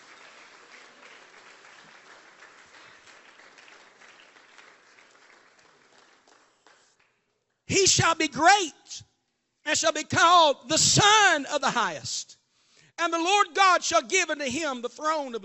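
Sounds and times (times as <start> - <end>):
audience clapping hands: 0.0 - 7.6
speech: 7.8 - 9.1, 9.7 - 12.4, 13.0 - 15.4.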